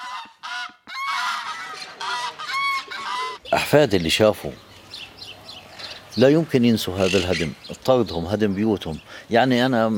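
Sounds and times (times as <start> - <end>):
geese honking: 0.0 - 3.4
speech: 3.5 - 4.7, 6.2 - 9.9.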